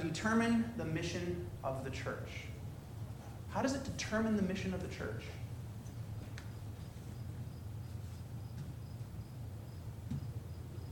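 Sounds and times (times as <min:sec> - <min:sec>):
speech: 0:00.2 - 0:02.6, 0:03.5 - 0:05.4
crickets chirping in a steady high trill: 0:06.0 - 0:10.9.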